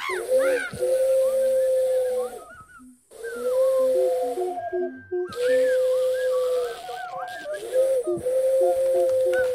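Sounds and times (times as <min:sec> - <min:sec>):
person imitating an owl's hoot: 0:00.0 - 0:09.5.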